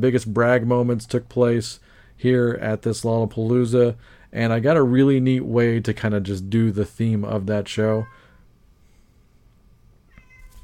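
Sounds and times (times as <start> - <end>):
speech: 0.0 - 8.2
faint hum: 0.0 - 10.6
cat meowing: 8.0 - 8.5, 10.1 - 10.6.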